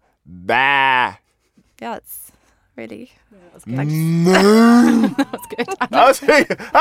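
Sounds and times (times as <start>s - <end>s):
person imitating a cow's moo: 0.3s - 1.2s, 3.7s - 5.2s
speech: 0.3s - 1.2s, 1.8s - 6.7s
laughter: 3.8s - 6.7s.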